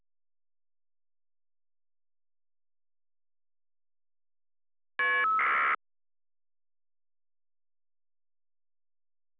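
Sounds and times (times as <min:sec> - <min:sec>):
FSK modem data tones: 0:05.0 - 0:05.8.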